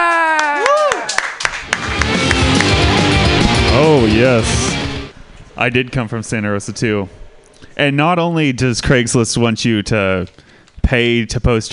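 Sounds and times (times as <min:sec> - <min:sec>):
audience clapping for comedian: 0:00.0 - 0:03.2
short rising and falling musical tone: 0:01.8 - 0:05.2
speech: 0:04.0 - 0:04.8, 0:05.6 - 0:07.2, 0:07.8 - 0:11.7.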